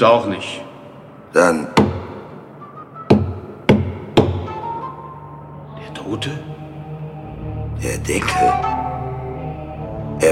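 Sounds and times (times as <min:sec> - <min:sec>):
speech: 0:00.0 - 0:00.7, 0:01.3 - 0:01.8, 0:06.1 - 0:06.6, 0:07.8 - 0:08.8
hollow knocks on a cheap wooden coffin: 0:03.1 - 0:04.5.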